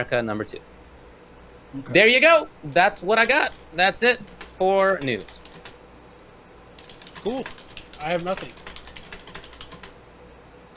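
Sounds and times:
speech: 0.0s - 0.8s, 1.7s - 5.5s, 7.2s - 8.6s
typing on a computer keyboard: 4.2s - 5.8s, 6.8s - 10.0s.

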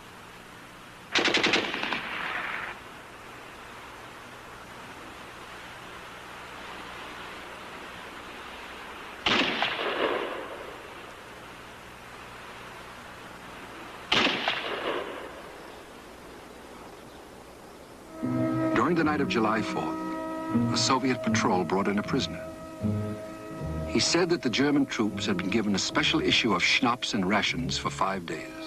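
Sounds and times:
low hiss: 0.0s - 28.6s
sniper gunfire on a front line: 1.1s - 2.7s, 9.2s - 10.5s, 14.1s - 15.3s
speech: 19.0s - 20.0s, 20.6s - 22.3s, 24.0s - 28.6s.

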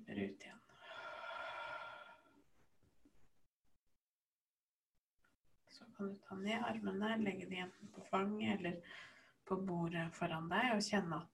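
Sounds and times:
speech: 0.2s - 0.6s, 5.7s - 11.3s
long deep breath out during a guided breathing exercise: 0.7s - 2.5s.

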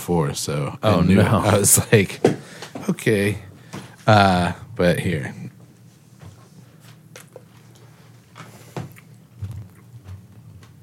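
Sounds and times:
speech: 0.0s - 5.5s
chewing at the microphone: 7.1s - 10.8s
soft wet mouth noises: 8.9s - 10.4s.

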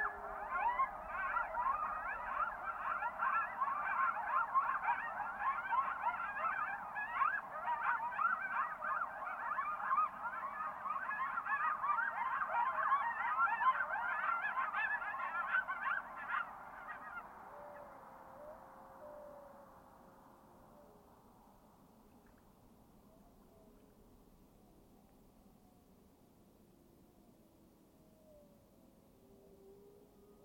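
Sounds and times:
coyotes and wolves yipping and howling in a deep glacial valley: 0.0s - 19.9s, 27.3s - 30.4s.

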